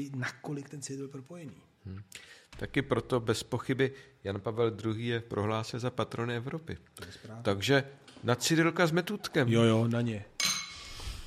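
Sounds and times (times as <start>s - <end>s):
speech: 0.0s - 10.3s
glasses clinking in a toast: 10.4s - 11.0s.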